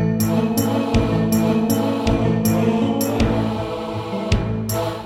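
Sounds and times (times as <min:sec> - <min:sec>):
synthesizer sound module: 0:00.2 - 0:04.9.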